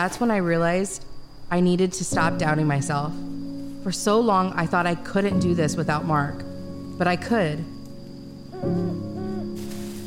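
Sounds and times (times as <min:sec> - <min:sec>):
speech: 0:00.0 - 0:07.8, 0:08.6 - 0:09.1
insect-like drone: 0:00.0 - 0:10.0
owl hooting in a low rounded call: 0:08.4 - 0:10.0.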